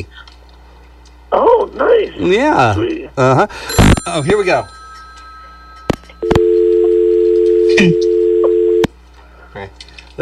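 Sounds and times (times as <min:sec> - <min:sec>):
speech: 0:00.0 - 0:00.3, 0:01.3 - 0:04.8, 0:07.8 - 0:08.1, 0:09.6 - 0:10.2
loud telephone dial tone after a caller's call into a radio show hangs up: 0:06.2 - 0:08.9.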